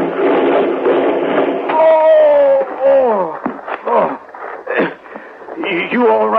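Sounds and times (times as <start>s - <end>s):
wagon tipping over and crashing with loud thuds and bangs: 0.0s - 5.0s
speech: 6.0s - 6.3s.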